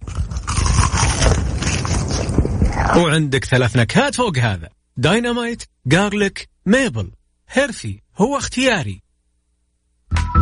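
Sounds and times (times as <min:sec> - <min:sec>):
crunching of fried chicken fillet: 0:00.0 - 0:03.0
speech: 0:03.0 - 0:09.0.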